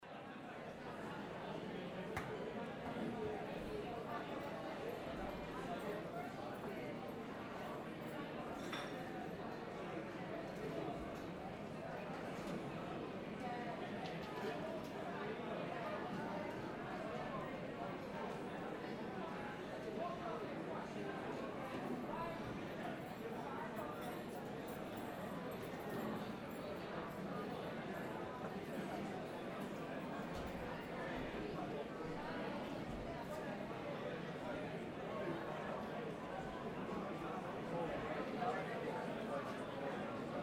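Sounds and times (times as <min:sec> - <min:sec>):
ambience of people in a lunch line: 0:00.0 - 0:40.4.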